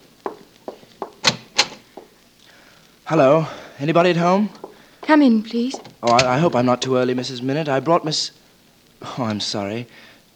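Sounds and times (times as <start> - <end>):
door handle and latch clunks: 1.1 - 1.9, 5.7 - 6.4
door rattling as it swings open: 1.1 - 1.9, 5.7 - 6.7
speech: 3.1 - 8.4, 9.0 - 10.3.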